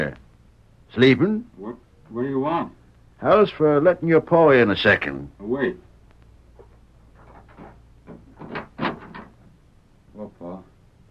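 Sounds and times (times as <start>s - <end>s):
speech: 0.0s - 0.2s, 0.9s - 5.9s
door creaking and scraping open: 6.6s - 9.5s.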